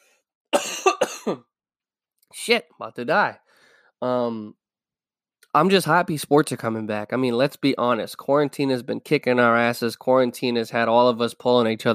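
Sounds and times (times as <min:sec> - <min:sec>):
harsh coughs: 0:00.5 - 0:01.5
speech: 0:01.2 - 0:01.5, 0:02.3 - 0:03.4, 0:04.0 - 0:04.6, 0:05.5 - 0:11.9.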